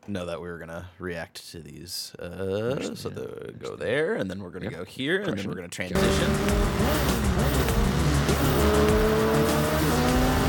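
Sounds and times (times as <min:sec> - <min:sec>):
speech: 0:00.1 - 0:10.2
racing car engines roaring in a video game trailer: 0:06.0 - 0:10.4.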